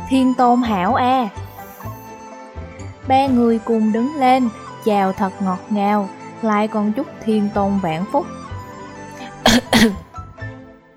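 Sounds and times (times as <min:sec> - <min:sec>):
speech: 0:00.1 - 0:01.4, 0:03.1 - 0:08.4, 0:09.8 - 0:10.0
dry cough after choking on tea: 0:09.2 - 0:10.1.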